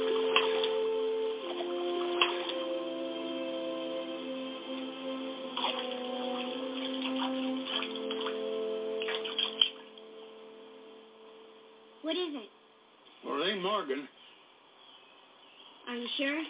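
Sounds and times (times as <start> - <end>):
creek water: 0.0 - 12.3
faint hum: 0.0 - 16.4
short bursts of voices: 12.0 - 12.6, 15.8 - 16.4.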